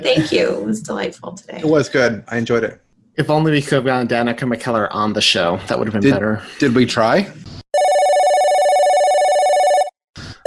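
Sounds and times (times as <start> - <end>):
speech: 0.0 - 7.6
telephone ringing with a steady electronic trill: 7.7 - 10.4.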